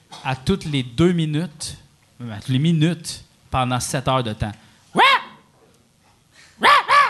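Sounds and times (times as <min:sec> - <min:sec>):
speech: 0:00.2 - 0:04.6
dog barking excitedly: 0:05.0 - 0:05.4, 0:06.6 - 0:07.0.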